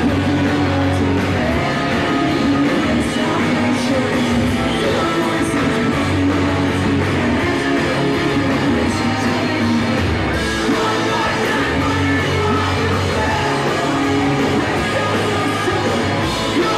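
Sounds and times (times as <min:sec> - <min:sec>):
loud dense rock music with distorted instruments: 0:00.0 - 0:16.7
sung vocal melody: 0:00.0 - 0:16.7.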